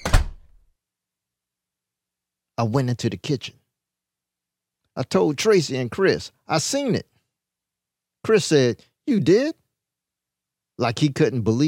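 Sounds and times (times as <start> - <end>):
door shutting with a solid thud: 0.0 - 0.6
speech: 2.6 - 3.6, 5.0 - 7.1, 8.2 - 9.6, 10.8 - 11.6.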